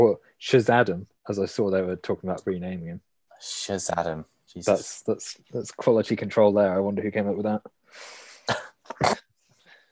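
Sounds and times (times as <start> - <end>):
speech: 0.0 - 9.2
cough mixed with a laugh: 8.4 - 9.3.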